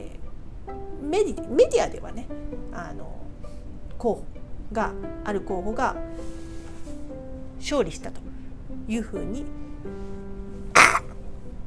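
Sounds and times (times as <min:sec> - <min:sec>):
speech: 0:00.7 - 0:03.3, 0:04.0 - 0:06.4, 0:07.6 - 0:10.2
person sneezing: 0:10.8 - 0:11.2.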